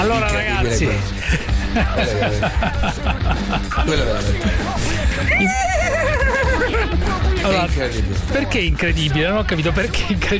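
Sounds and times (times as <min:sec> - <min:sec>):
chatter and laughter: 0:00.0 - 0:10.3
speech: 0:00.0 - 0:10.3
man imitating a horse whinny: 0:05.3 - 0:06.7.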